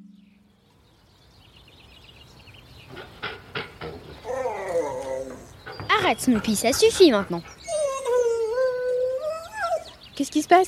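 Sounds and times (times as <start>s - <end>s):
dog whining in a garden while trying to eat butterflies: 4.2s - 6.1s, 7.0s - 10.0s
speech: 6.1s - 7.6s, 10.2s - 10.6s.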